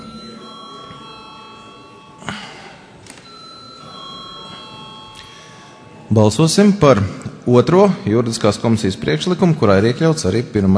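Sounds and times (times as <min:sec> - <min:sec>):
parliament bell ringing to summon members to a vote: 0:00.0 - 0:06.9
speech: 0:06.1 - 0:10.7.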